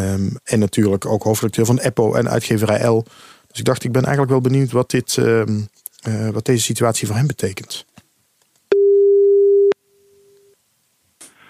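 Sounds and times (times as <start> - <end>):
speech: 0.0 - 7.9
telephone ringback tone on an outgoing call: 8.7 - 10.5.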